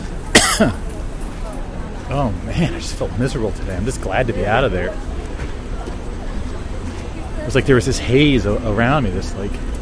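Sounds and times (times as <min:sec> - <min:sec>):
person coughing: 0:00.3 - 0:00.8
speech: 0:00.6 - 0:00.8, 0:02.1 - 0:05.1, 0:07.5 - 0:09.7.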